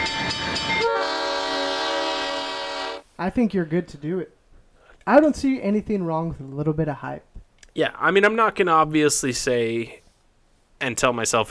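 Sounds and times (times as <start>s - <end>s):
loud train horn blaring: 0.0s - 3.0s
rumble of rail noise: 0.0s - 3.1s
speech: 3.2s - 4.4s, 5.0s - 10.0s, 10.8s - 11.4s.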